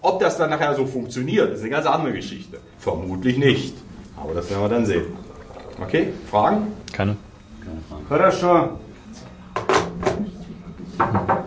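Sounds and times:
low hum: 0:00.0 - 0:11.4
speech: 0:00.1 - 0:05.2, 0:05.8 - 0:09.3
knocking on a door: 0:09.6 - 0:10.2, 0:11.0 - 0:11.4.

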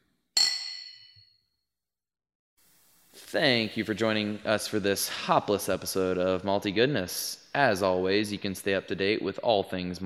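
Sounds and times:
drinks clinking together in a toast: 0:00.4 - 0:01.3
speech: 0:03.3 - 0:10.0.

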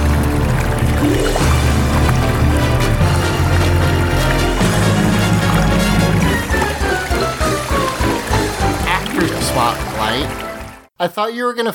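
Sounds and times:
theme music cue through a gurgling underwater filter effect: 0:00.0 - 0:10.9
speech: 0:11.0 - 0:11.7.

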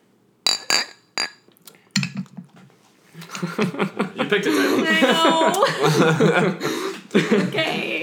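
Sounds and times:
beer glasses clinking in a toast: 0:00.5 - 0:02.4
laughter: 0:03.2 - 0:08.0
speech: 0:03.4 - 0:08.0.

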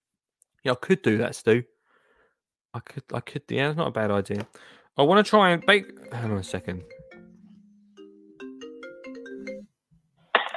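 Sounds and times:
speech: 0:00.6 - 0:01.7, 0:02.8 - 0:07.0
phone ringtone playing a short electronic melody: 0:05.4 - 0:09.8.

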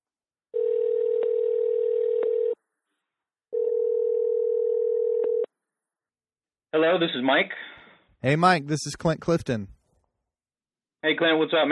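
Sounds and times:
telephone dial tone: 0:00.5 - 0:02.6, 0:03.5 - 0:05.5
speech: 0:06.8 - 0:09.8, 0:11.0 - 0:11.7.

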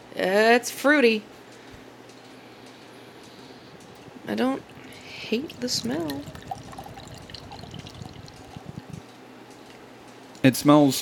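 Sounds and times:
speech: 0:00.2 - 0:01.4, 0:04.3 - 0:04.7, 0:05.3 - 0:06.4, 0:10.4 - 0:11.0
beer pouring into a glass with fizzing froth: 0:04.6 - 0:09.0.

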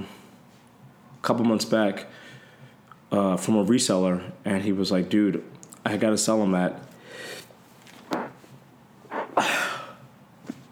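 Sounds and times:
speech: 0:01.2 - 0:02.3, 0:03.1 - 0:07.4
person sneezing: 0:09.1 - 0:09.9.

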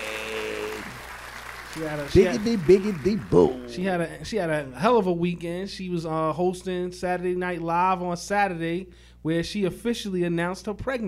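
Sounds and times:
applause: 0:00.0 - 0:03.8
speech: 0:01.8 - 0:11.0.

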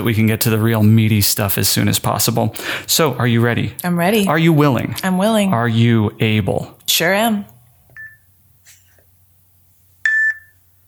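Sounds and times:
speech: 0:00.0 - 0:07.5
electronic beeps: 0:10.1 - 0:10.5.

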